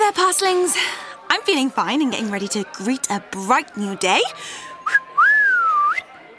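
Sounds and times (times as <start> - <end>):
speech: 0.1 - 4.7
person whistling a brief phrase: 4.9 - 6.0.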